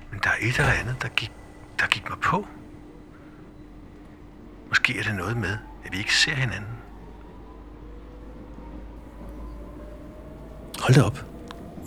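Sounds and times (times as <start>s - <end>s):
faint rattling inside a train carriage: 0.0s - 11.8s
train rumbling heard inside a passenger carriage: 0.0s - 11.8s
speech: 0.4s - 2.6s, 4.7s - 6.9s, 10.9s - 11.3s.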